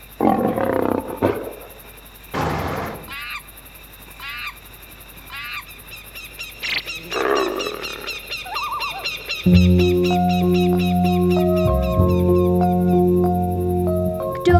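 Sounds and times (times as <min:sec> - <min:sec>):
high chattering animal calls: 0:00.0 - 0:03.5, 0:04.2 - 0:04.6, 0:05.3 - 0:14.5
tiger in a zoo roaring in deep rasping bursts: 0:00.1 - 0:01.7, 0:02.3 - 0:03.2.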